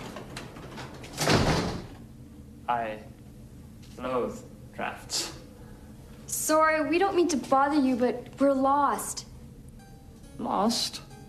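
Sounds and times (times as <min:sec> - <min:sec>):
door being pushed shut: 0:00.0 - 0:02.0
speech: 0:02.7 - 0:03.2, 0:04.0 - 0:05.4, 0:06.5 - 0:09.3, 0:10.4 - 0:11.0.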